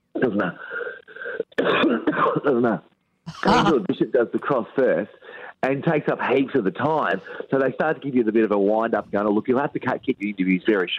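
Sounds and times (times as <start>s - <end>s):
speech: 0.2s - 0.8s, 1.6s - 10.9s
person coughing over a phone line: 1.6s - 2.5s, 3.3s - 3.9s.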